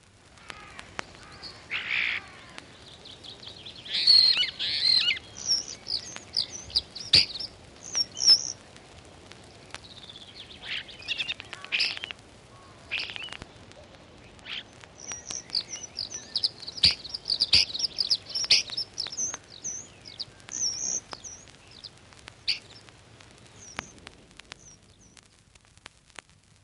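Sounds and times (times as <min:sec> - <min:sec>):
faint low hiss: 0:00.0 - 0:26.6
starling singing with whistles, chirps, clicks and rattles: 0:01.2 - 0:08.6, 0:09.8 - 0:13.4, 0:14.4 - 0:22.9.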